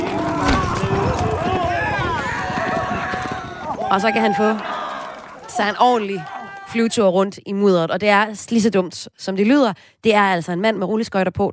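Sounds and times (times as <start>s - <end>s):
buffalo hooves pounding in a stampede: 0.0s - 6.7s
speech: 3.9s - 4.7s, 5.6s - 11.5s.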